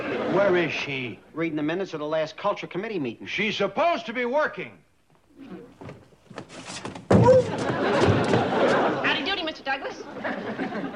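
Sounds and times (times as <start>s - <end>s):
laughter: 0.0s - 0.9s, 7.2s - 10.9s
speech: 0.4s - 4.8s
door swinging open: 5.8s - 8.5s.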